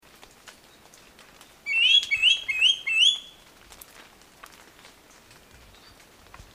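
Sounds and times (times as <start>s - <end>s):
grey-bellied hawk calling: 1.7s - 3.3s.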